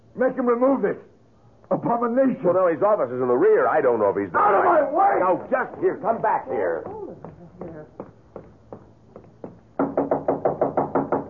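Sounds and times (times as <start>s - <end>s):
speech: 0.2s - 1.1s, 1.7s - 7.3s
knocking on an office door in a museum: 5.3s - 11.2s.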